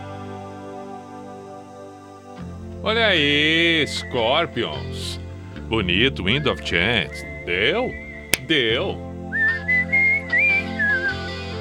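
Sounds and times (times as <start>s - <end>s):
speech: 2.8s - 9.1s
person whistling a short wavering melody: 9.3s - 11.6s.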